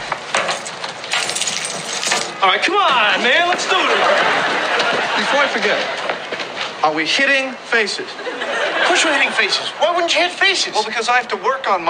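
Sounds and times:
keys and watches clattering into a hat: 0.0 - 2.4
speech: 2.4 - 6.1, 6.8 - 8.3, 8.9 - 11.8
laughter: 3.0 - 6.7, 7.9 - 10.9.

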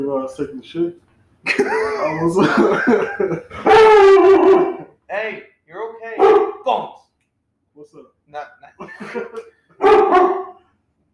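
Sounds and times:
speech: 0.0 - 5.5, 7.8 - 10.4
laughter: 1.5 - 3.7, 8.6 - 9.6
large puppy barking: 3.6 - 4.9, 6.2 - 6.6, 9.8 - 10.6.

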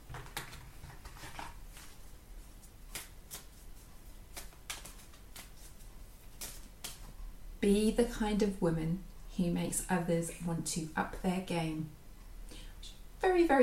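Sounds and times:
cards shuffled inside a box: 0.1 - 7.2
speech: 7.6 - 12.0, 13.4 - 13.6.

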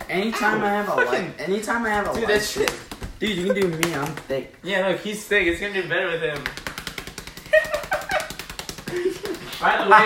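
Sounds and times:
speech: 0.1 - 6.6, 9.0 - 10.0
person yelling: 0.4 - 1.4
rapid high-speed slapping on buttocks: 1.7 - 4.5, 6.2 - 9.8.

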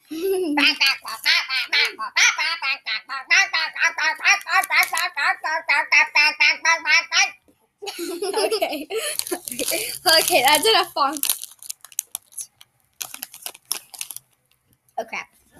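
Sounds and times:
laughter: 0.1 - 7.1, 7.8 - 9.9
person quacking like a duck: 0.5 - 7.4
speech: 10.2 - 11.3.

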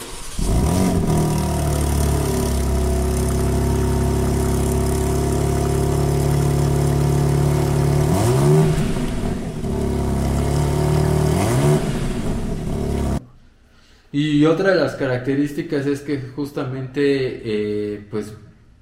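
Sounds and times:
sports car engine accelerating through gear changes: 0.0 - 13.2
speech: 14.2 - 18.5.

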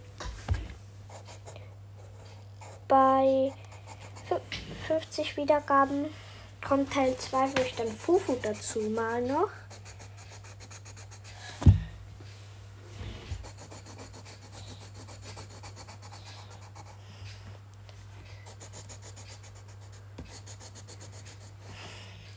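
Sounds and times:
low hum: 0.0 - 22.3
strokes drawn on paper scratching: 1.1 - 6.0, 6.6 - 11.5, 13.2 - 17.2, 18.4 - 21.7
speech: 2.9 - 3.6, 4.3 - 9.6
soft knock: 11.6 - 11.9.

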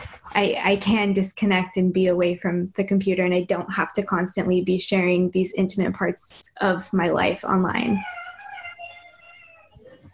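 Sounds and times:
speech: 0.4 - 8.2
cat meowing: 7.9 - 10.0.

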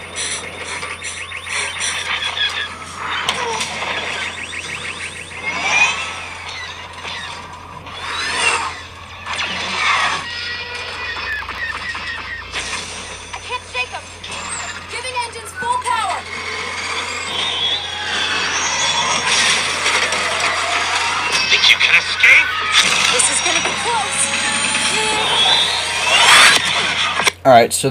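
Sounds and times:
engine-like roars: 0.0 - 27.3
high squeals: 0.0 - 27.3
mechanical whirring in video game trailer audio: 0.0 - 27.4.

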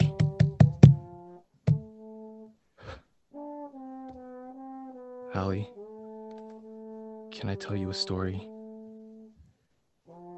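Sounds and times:
knocking on a door: 0.0 - 1.0, 1.7 - 1.9
speech: 5.4 - 5.8, 7.4 - 8.5.

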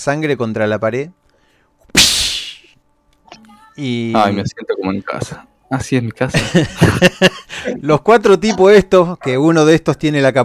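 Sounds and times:
speech: 0.0 - 1.2, 3.8 - 10.4
whip lash cracking: 2.0 - 2.6
laughter: 6.3 - 9.5.

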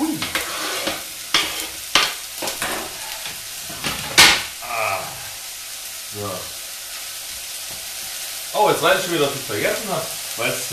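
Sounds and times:
onions, mushrooms and carrots frying in hot oil in a pan: 0.0 - 10.7
scraping stir strokes in a frying pan: 0.2 - 3.9
louder clatter of a frying pan: 0.2 - 4.5
speech: 8.8 - 10.7.

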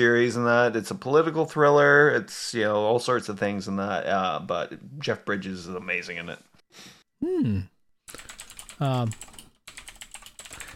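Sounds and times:
speech: 0.0 - 9.3
short voiced hums or murmurs: 7.2 - 7.7
fingers typing on a computer keyboard: 8.1 - 10.7.

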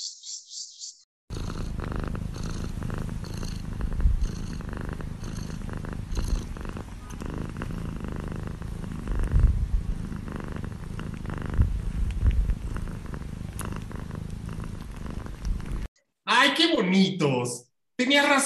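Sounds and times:
cats purring while being petted: 1.3 - 15.9
speech: 16.6 - 18.4.

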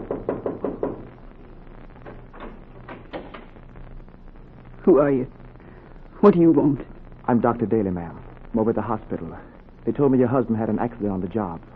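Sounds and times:
firm knocking on a door: 0.0 - 1.1, 2.0 - 3.5
low hum: 0.0 - 11.7
speech: 4.9 - 5.4, 6.2 - 11.7.

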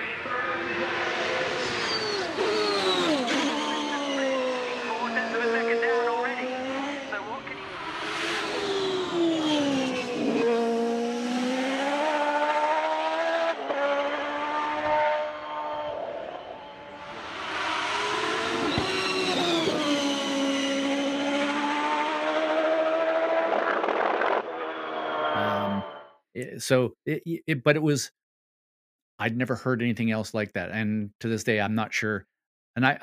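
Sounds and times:
Corvette IMSA race car engine revving: 0.2 - 26.0
speech: 26.6 - 28.2, 29.2 - 33.0.

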